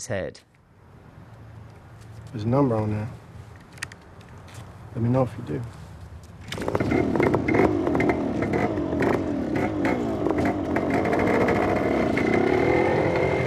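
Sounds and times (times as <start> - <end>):
speech: 0.0 - 0.5, 2.3 - 3.2, 4.9 - 5.8
vehicle engine starting and revving, driving off at speed across a parking lot: 6.5 - 13.4.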